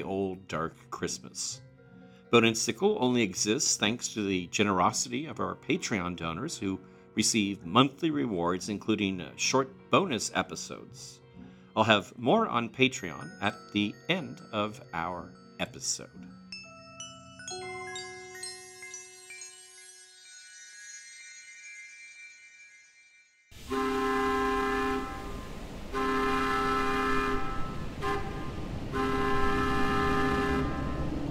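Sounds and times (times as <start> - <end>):
speech: 0.0 - 1.7, 2.3 - 11.2, 11.8 - 16.4
ringing musical notes: 13.1 - 23.6
steam locomotive whistle: 23.7 - 31.2.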